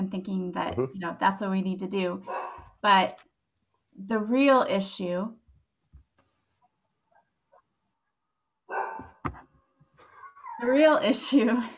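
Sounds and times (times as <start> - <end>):
speech: 0.1 - 3.3, 4.0 - 5.4, 10.6 - 11.7
pet dog barking: 2.2 - 2.7, 8.7 - 9.2.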